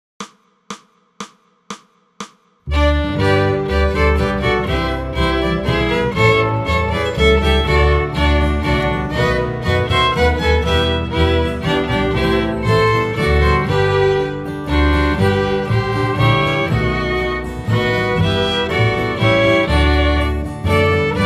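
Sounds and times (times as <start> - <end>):
Christmas bass line: 2.7 - 21.2.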